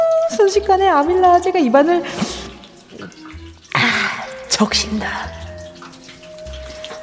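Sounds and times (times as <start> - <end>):
food sizzling in hot frying oil: 0.0 - 7.0
speech: 0.5 - 5.4.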